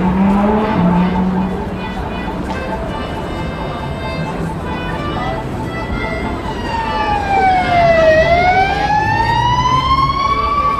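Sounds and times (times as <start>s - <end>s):
emergency vehicle siren wailing: 0.0s - 10.7s.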